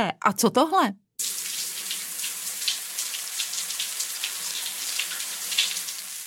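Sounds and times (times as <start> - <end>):
speech: 0.0 - 1.0
shower spraying water with droplet spatters: 1.2 - 6.2.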